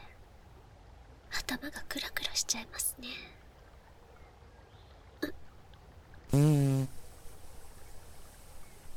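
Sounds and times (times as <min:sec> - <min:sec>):
speech: 0:01.5 - 0:03.5
low-pitched buzzy fart: 0:06.3 - 0:07.1.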